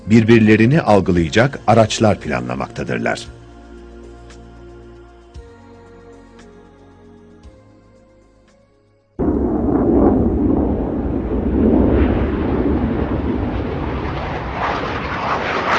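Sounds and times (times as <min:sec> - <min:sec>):
soft tonal music: 0:00.0 - 0:09.1
speech: 0:00.1 - 0:03.4
airplane engine roar as the aircraft passes: 0:09.2 - 0:15.7.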